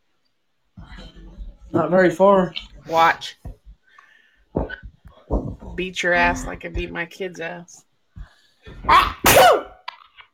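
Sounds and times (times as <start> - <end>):
speech: 1.7 - 3.5, 5.8 - 7.9, 8.7 - 9.7
loud sneeze in two forceful bursts: 8.8 - 9.8.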